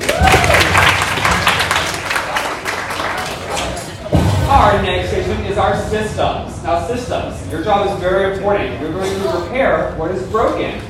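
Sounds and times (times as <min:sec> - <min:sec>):
audience applauding: 0:00.0 - 0:04.0
speech: 0:04.7 - 0:10.8.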